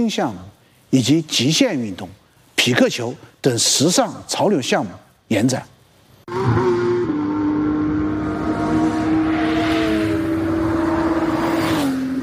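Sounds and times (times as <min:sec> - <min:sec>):
speech: 0:00.0 - 0:05.7, 0:06.3 - 0:06.8
race car engines roaring at a GT race by Tongming Lake in Beijing: 0:06.3 - 0:12.2.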